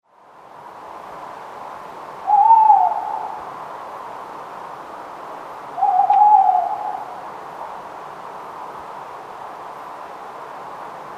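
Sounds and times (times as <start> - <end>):
faint background hiss: 0.1 - 11.1
tawny owls hooting at night in Somerset: 2.2 - 3.4, 5.8 - 7.2.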